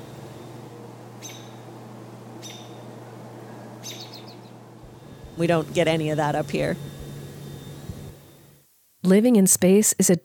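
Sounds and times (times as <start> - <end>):
low hum: 0.0 - 10.2
birds chirping and trilling: 3.6 - 4.6
speech: 5.4 - 7.0, 9.1 - 10.2.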